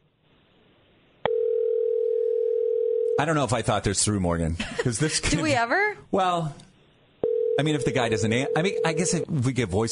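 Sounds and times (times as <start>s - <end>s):
steady continuous telephone tone: 1.3s - 3.2s, 7.2s - 9.2s
speech: 3.2s - 6.7s, 7.6s - 9.8s.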